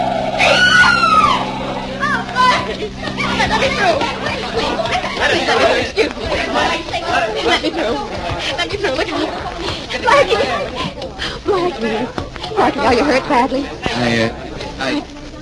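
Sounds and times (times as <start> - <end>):
tyre screech of a car skidding on a street: 0.0 - 3.8
blaring tones: 0.0 - 6.6
excited crowd murmuring and calling out: 0.0 - 15.4
laughter: 1.1 - 13.0
speech: 7.4 - 15.1.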